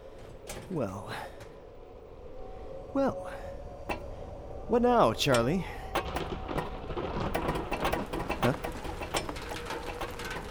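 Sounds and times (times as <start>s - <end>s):
speech: 0.7s - 1.4s, 2.9s - 3.4s, 4.7s - 6.4s
steady rain pattering: 3.9s - 10.4s.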